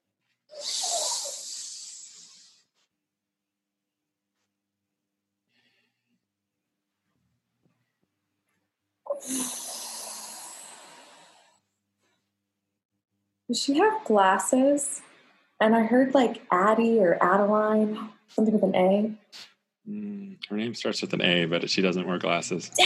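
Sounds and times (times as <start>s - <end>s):
deep breath in and out: 0.5s - 2.7s, 9.1s - 12.3s
speech: 9.2s - 9.6s, 13.5s - 22.8s.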